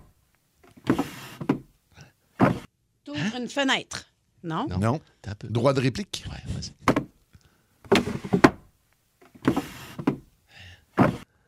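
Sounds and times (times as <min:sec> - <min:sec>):
drawer sliding and rattling: 0:00.7 - 0:01.7, 0:02.4 - 0:02.7, 0:07.9 - 0:08.6, 0:09.2 - 0:10.2, 0:11.0 - 0:11.2
speech: 0:03.4 - 0:06.8.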